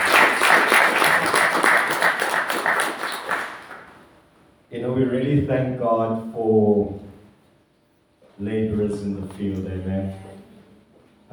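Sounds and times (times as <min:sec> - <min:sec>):
crowd applauding: 0:00.0 - 0:04.0
speech: 0:05.0 - 0:07.0, 0:08.4 - 0:10.3.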